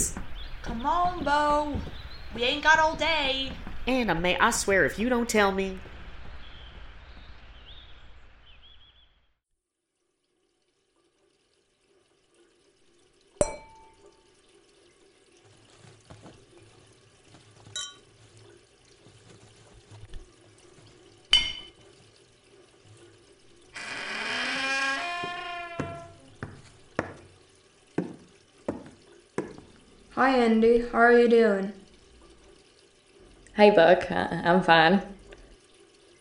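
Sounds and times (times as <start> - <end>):
water splashing at a sink: 0.0 - 8.4, 11.1 - 36.1
speech: 0.1 - 5.9, 30.2 - 31.8, 33.6 - 35.1
glass clinking and knocking at a sink: 13.4 - 14.0, 17.7 - 18.1, 21.3 - 21.8
squeaky rubbing of glass being wiped hard: 23.8 - 26.3.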